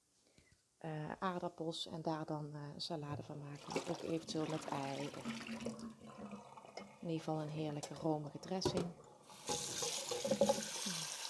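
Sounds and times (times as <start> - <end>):
speech: 0.8 - 9.5
cold tap water running over eggs in a sink: 3.6 - 7.0, 7.8 - 11.2.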